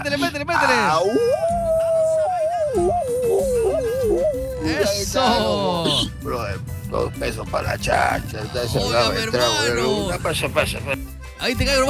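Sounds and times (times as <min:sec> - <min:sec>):
speech: 0:00.0 - 0:01.6, 0:02.8 - 0:11.8
person howling like a dog: 0:00.9 - 0:06.0.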